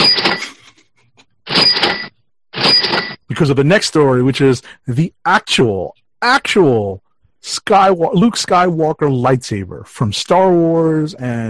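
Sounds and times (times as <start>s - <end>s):
cash register ringing: 0.0s - 0.7s, 1.5s - 3.2s
speech: 3.4s - 11.4s.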